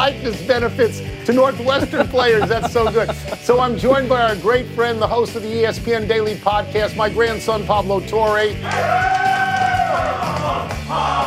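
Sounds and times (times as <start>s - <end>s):
speech: 0.1s - 9.3s, 9.9s - 11.2s
laughter: 1.5s - 3.9s
large audience cheering loudly: 8.6s - 11.2s
sharp whoop: 8.6s - 11.2s.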